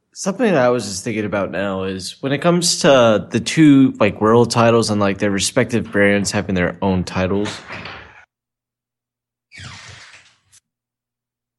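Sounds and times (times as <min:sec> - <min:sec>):
speech: 0:00.2 - 0:08.0
door opening: 0:07.3 - 0:08.3, 0:09.5 - 0:10.6.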